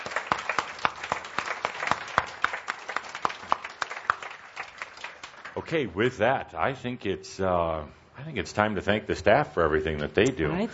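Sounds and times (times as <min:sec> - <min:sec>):
small group applauding: 0:00.0 - 0:05.8
speech: 0:05.7 - 0:10.7.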